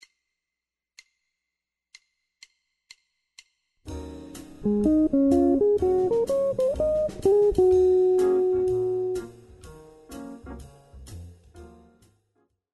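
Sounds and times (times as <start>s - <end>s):
jazz guitar improvisation: 4.6s - 9.4s.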